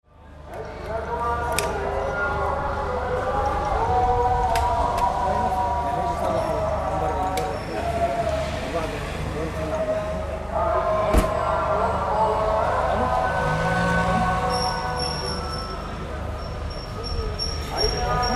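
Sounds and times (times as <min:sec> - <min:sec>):
ambient prayers: 0:00.1 - 0:18.3.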